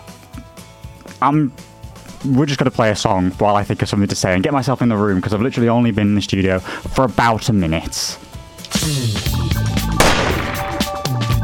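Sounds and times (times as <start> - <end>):
speech: 1.2 - 9.6
gunshot blasts: 10.0 - 11.0.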